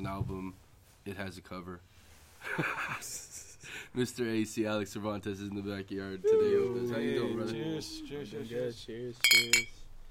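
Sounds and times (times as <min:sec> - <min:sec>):
speech: 0:00.0 - 0:09.8
low voices: 0:06.2 - 0:08.9
glasses clinking in a toast in a backyard: 0:09.2 - 0:09.8.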